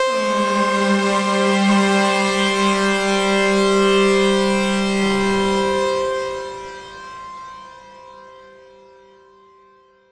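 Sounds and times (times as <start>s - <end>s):
epic sawtooth synth blast: 0.0s - 7.0s.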